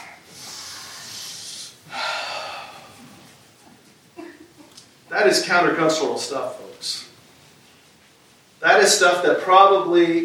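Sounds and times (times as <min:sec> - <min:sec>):
audience taking a deep breath together: 0:00.3 - 0:03.5
speech: 0:05.1 - 0:07.1, 0:08.6 - 0:10.2.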